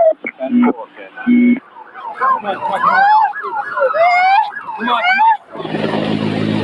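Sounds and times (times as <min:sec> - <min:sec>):
burst of voices: 0:00.0 - 0:06.2
emergency vehicle sirens wailing: 0:00.0 - 0:06.6
steady rush of broadband noise: 0:00.0 - 0:06.6.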